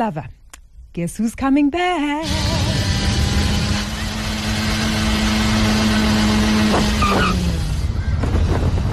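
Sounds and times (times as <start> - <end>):
speech: 0.0 - 0.4, 1.0 - 2.6, 6.8 - 7.4
small yellow and red scooter engine revving and pulling away: 2.2 - 8.8.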